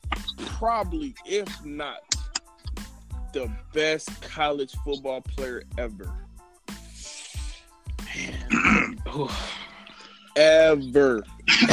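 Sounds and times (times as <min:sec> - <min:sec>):
speech: 0:00.6 - 0:02.1, 0:03.3 - 0:06.3, 0:08.2 - 0:09.6, 0:10.4 - 0:11.7
man clearing his throat: 0:08.1 - 0:09.6, 0:11.5 - 0:11.7.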